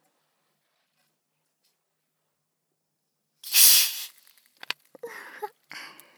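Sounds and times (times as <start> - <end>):
carbonated water bottle being opened with fizzing hiss: 3.4 - 4.8.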